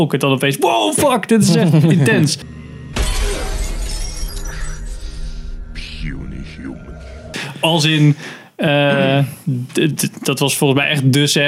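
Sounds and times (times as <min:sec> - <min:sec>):
speech: 0:00.0 - 0:02.6, 0:07.6 - 0:11.4
indistinct voices: 0:01.0 - 0:09.8
laughter: 0:01.4 - 0:02.4
rumbling noise: 0:02.2 - 0:08.0
tinkling glass debris: 0:02.5 - 0:06.1
glass shattering: 0:02.9 - 0:05.6.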